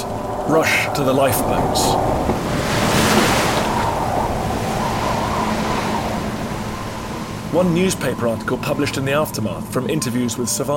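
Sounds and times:
stormy ocean surf with waves surging and crashing: 0:00.0 - 0:09.8
gusting wind rushing across the microphone: 0:00.0 - 0:10.0
speech: 0:00.5 - 0:02.6, 0:07.6 - 0:10.7.

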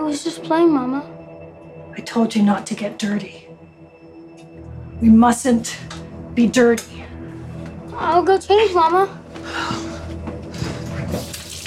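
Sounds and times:
speech: 0:00.1 - 0:01.2, 0:02.0 - 0:03.4, 0:05.0 - 0:07.1, 0:08.0 - 0:09.9
hot water running from a tap into a basin for hand washing: 0:11.1 - 0:11.6.

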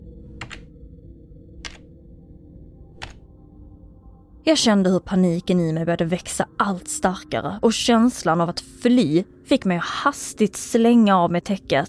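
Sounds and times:
slow keystrokes on a computer keyboard at a desk: 0:00.4 - 0:00.6, 0:01.6 - 0:01.8
speech: 0:04.4 - 0:11.8.

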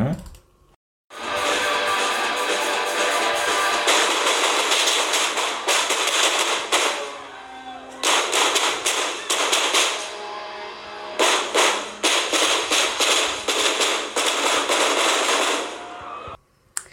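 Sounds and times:
rapid volleys of gunshots at a concert: 0:01.3 - 0:07.1, 0:08.0 - 0:10.1, 0:11.2 - 0:15.8.

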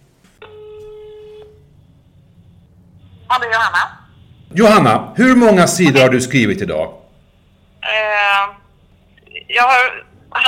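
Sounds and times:
telephone ringback tone while dialing: 0:00.4 - 0:01.7
speech: 0:03.3 - 0:07.0, 0:09.5 - 0:10.4.

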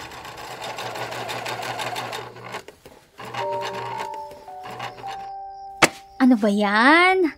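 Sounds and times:
sewing machine breaking down, loud rapid mechanical whirring: 0:00.0 - 0:05.3
steady electronic beeps: 0:03.5 - 0:06.7
speech: 0:06.2 - 0:07.3.

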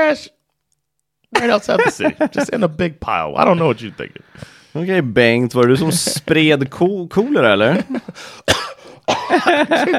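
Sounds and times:
speech: 0:00.1 - 0:00.4, 0:01.3 - 0:09.9
laughter: 0:01.4 - 0:02.6, 0:05.6 - 0:06.3, 0:07.6 - 0:08.2, 0:09.1 - 0:09.9
person with a harsh cough coughing up blood: 0:08.3 - 0:09.9.

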